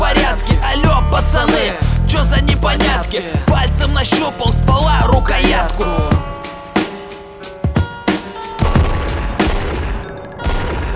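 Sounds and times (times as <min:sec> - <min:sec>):
steady musical backdrop: 0:00.0 - 0:10.9
rapid series of booming gunshots: 0:08.6 - 0:10.9.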